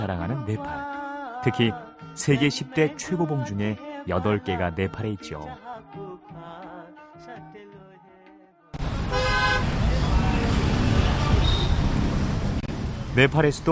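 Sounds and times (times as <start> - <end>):
speech: 0.0 - 6.6, 13.2 - 13.6
city street traffic roar in Kathmandu Nepal: 8.8 - 13.6
car horns honking in Kathmandu Nepal: 9.0 - 10.1, 10.7 - 12.0.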